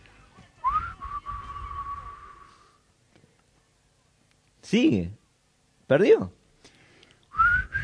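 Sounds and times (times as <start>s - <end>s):
person whistling a song in a whistling contest: 0.6s - 2.8s, 7.3s - 7.8s
speech: 4.7s - 5.2s, 5.9s - 6.4s.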